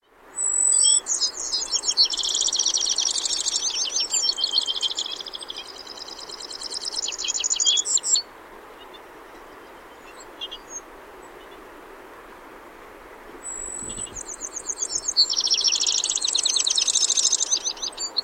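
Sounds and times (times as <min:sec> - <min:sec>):
Corsican finch Carduelis corsicana singing: 0:00.4 - 0:08.2, 0:13.4 - 0:18.2.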